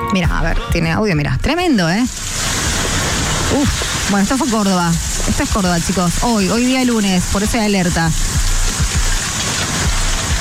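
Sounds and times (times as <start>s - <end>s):
speech: 0.1s - 2.4s, 3.5s - 8.5s
hail falling during a storm in Córdoba: 2.0s - 10.3s.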